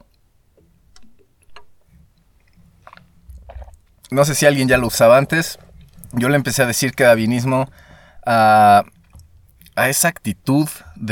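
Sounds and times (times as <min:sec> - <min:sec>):
wet mouth clicks while drinking water: 0:02.8 - 0:04.2
person gulping swallows of water: 0:02.9 - 0:06.3
speech: 0:04.1 - 0:09.0, 0:09.8 - 0:11.0.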